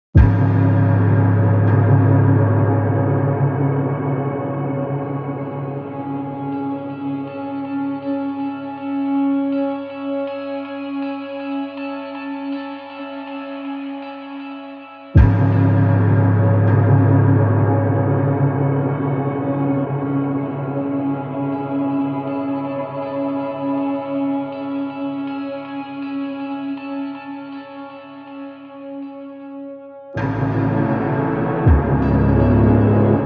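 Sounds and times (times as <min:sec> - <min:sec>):
music: 0:00.2 - 0:33.2.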